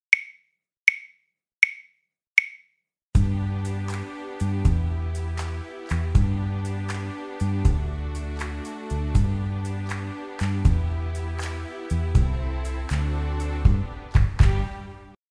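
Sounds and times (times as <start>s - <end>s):
backing track music: 3.2s - 15.2s.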